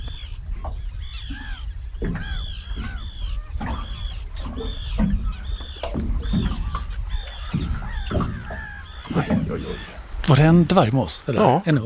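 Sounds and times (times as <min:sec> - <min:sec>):
common terns calling: 0:00.0 - 0:11.8
speech: 0:02.0 - 0:02.4, 0:09.8 - 0:11.8.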